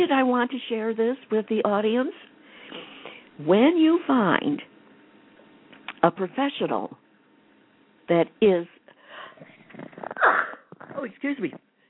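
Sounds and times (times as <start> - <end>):
speech: 0.0 - 4.7, 6.0 - 7.0, 8.1 - 8.8, 11.0 - 11.7
person sneezing: 10.0 - 11.0.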